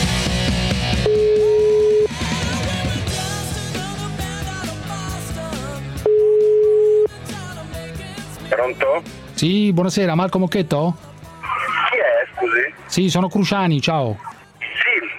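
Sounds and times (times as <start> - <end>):
loud music: 0.0 - 13.6
telephone ringing tone after a number is dialled: 1.0 - 2.4, 6.0 - 7.1
speech: 8.7 - 11.1, 13.0 - 14.3.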